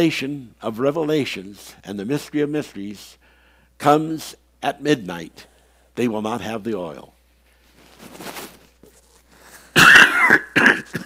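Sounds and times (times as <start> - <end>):
speech: 0.0 - 3.2, 3.8 - 7.1, 8.0 - 8.4
harsh coughs: 9.6 - 11.0.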